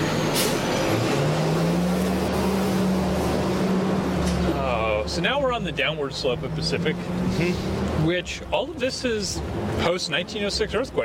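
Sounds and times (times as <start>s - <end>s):
big truck passing loudly on a street: 0.0s - 8.5s
speech: 5.1s - 11.0s.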